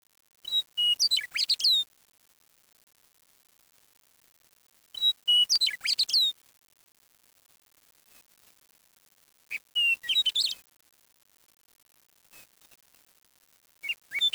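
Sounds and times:
bird chirping and twittering: 0:00.8 - 0:01.8, 0:05.3 - 0:06.3, 0:09.8 - 0:10.6, 0:13.8 - 0:14.3.

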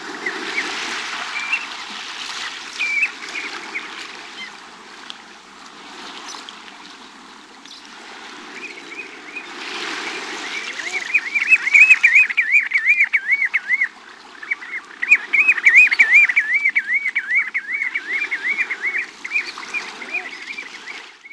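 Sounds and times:
bird calling in long wavering whistled phrases: 0:10.5 - 0:20.7.

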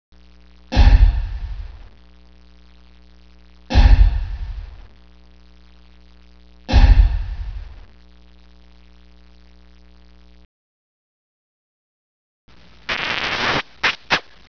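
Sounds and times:
pounding: 0:00.7 - 0:01.9, 0:03.7 - 0:04.9, 0:06.7 - 0:07.9.

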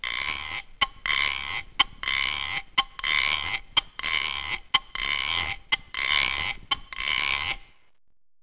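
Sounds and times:
guiro scraping: 0:00.0 - 0:07.8.

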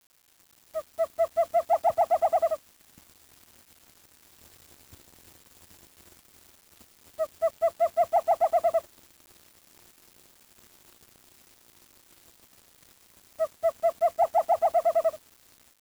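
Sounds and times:
bird giving rapid hollow evenly spaced notes: 0:00.8 - 0:02.6, 0:07.2 - 0:08.8, 0:13.4 - 0:15.2.

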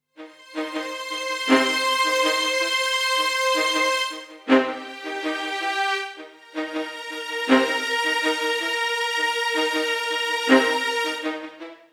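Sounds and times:
drum and bass strings at 160 BPM in C: 0:00.2 - 0:11.9.

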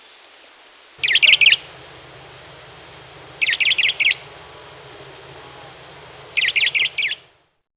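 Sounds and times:
crissal thrasher singing sharp buzzy chirping notes: 0:01.0 - 0:07.6
low hum: 0:01.0 - 0:07.7.

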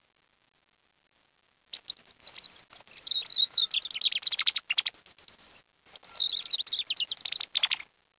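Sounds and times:
bird singing a fast high twittering song of chirps and trills: 0:01.8 - 0:07.8.

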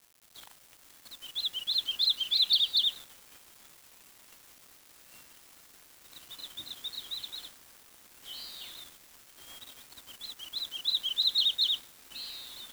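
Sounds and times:
bird twittering chirps: 0:01.2 - 0:03.0, 0:06.2 - 0:07.6, 0:08.2 - 0:08.9, 0:10.1 - 0:12.7.

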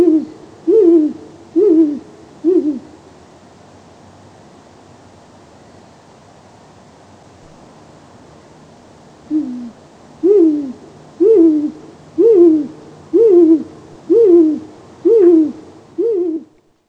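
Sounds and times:
great grey owl hoots: 0:00.0 - 0:03.0, 0:09.3 - 0:16.8
background hiss: 0:00.0 - 0:16.8.

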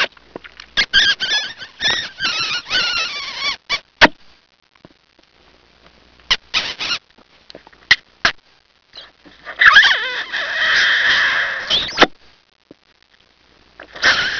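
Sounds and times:
kiss: 0:00.0 - 0:04.2, 0:06.3 - 0:07.0, 0:09.8 - 0:12.2.

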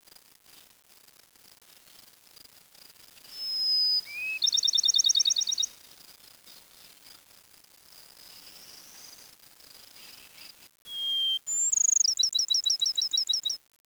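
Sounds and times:
bird singing: 0:03.4 - 0:05.7, 0:10.9 - 0:13.6.

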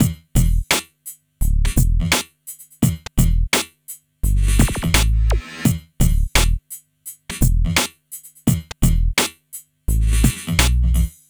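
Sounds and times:
bass: 0:00.0 - 0:00.7, 0:01.4 - 0:02.2, 0:02.8 - 0:03.6, 0:04.2 - 0:06.6, 0:07.3 - 0:07.8, 0:08.5 - 0:09.2, 0:09.9 - 0:11.2
drums: 0:00.0 - 0:11.2.

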